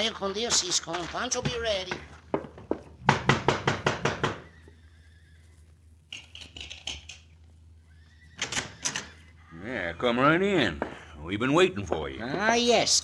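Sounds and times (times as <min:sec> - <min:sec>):
speech: 0:00.0 - 0:02.2, 0:10.0 - 0:13.0
horse hoofbeats clopping: 0:00.0 - 0:13.0
horse whinnying: 0:07.7 - 0:09.6.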